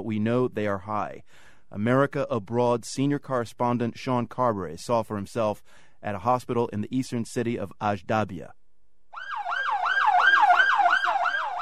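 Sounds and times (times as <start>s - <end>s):
speech: 0.0s - 8.6s
ambulance siren yelping at a hospital entrance in Ajdabiya eastern Libya: 9.1s - 11.5s.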